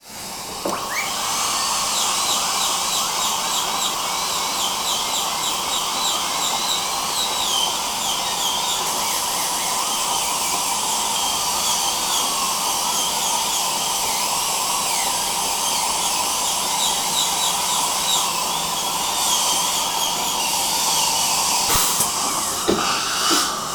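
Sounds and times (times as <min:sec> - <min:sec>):
dentist drill working on tooth: 0:00.0 - 0:23.7.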